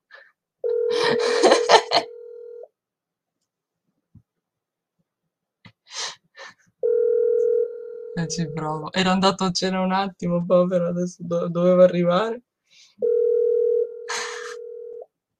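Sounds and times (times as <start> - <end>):
ringback tone of an outgoing phone call: 0.6 - 2.6, 6.8 - 8.8, 13.0 - 15.0
laughter: 0.9 - 2.1, 14.1 - 14.6
speech: 8.3 - 13.1.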